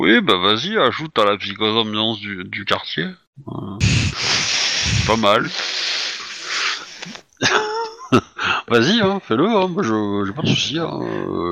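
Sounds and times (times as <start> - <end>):
speech: 0.0 - 4.4, 5.1 - 6.1, 7.0 - 11.5
voice imitating a wolf growling and snarling: 3.4 - 5.6, 10.4 - 11.5
steady hiss: 3.8 - 7.3
laughter: 6.2 - 8.6.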